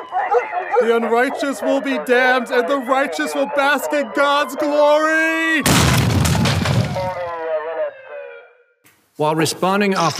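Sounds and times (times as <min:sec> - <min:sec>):
speech: 0:00.1 - 0:06.0, 0:09.2 - 0:10.1
bomb detonating at an armory: 0:05.6 - 0:07.3.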